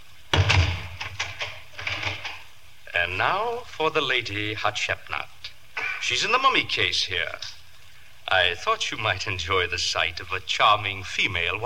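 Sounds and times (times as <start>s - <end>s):
room door shutting: 0.3s - 2.4s
speech: 3.0s - 5.4s, 6.0s - 7.6s, 8.3s - 11.6s.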